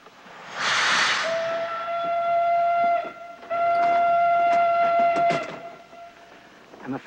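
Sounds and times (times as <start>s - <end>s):
steam hiss from train: 0.0s - 3.6s
loud steady train whistle blasts: 1.2s - 6.4s
departing passenger train rumbling and clattering: 1.2s - 7.0s.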